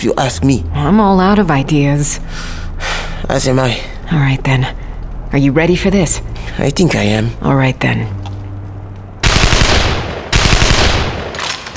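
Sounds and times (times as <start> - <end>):
speech: 0.0 - 8.2
long rumbling gunshot echo: 0.0 - 11.7
loud gunshots: 9.2 - 11.6.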